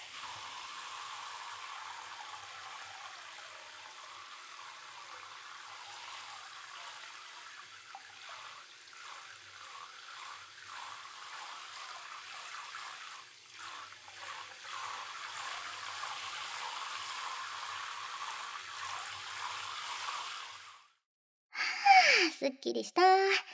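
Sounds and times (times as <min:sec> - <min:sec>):
water pouring and splashing while rinsing off soap foam: 0:00.0 - 0:21.0
speech: 0:22.4 - 0:23.5.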